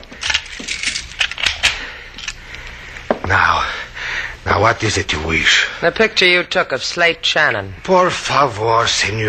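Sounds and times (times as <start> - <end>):
keys jangling and scraping in a door lock: 0.2 - 2.4
speech: 4.6 - 9.2.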